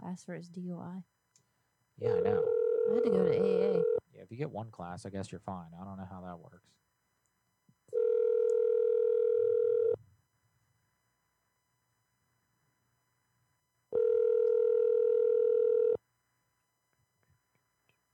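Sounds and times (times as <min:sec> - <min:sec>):
speech: 0:00.1 - 0:01.2, 0:02.0 - 0:06.8
telephone call tone: 0:02.0 - 0:04.0, 0:07.9 - 0:10.0, 0:14.0 - 0:16.0.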